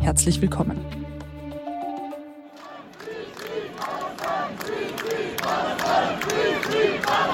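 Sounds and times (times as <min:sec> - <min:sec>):
speech: 0:00.1 - 0:01.0
brief sustained musical tone: 0:01.5 - 0:02.6
large outdoor protest crowd chanting slogans in unison: 0:02.5 - 0:07.3.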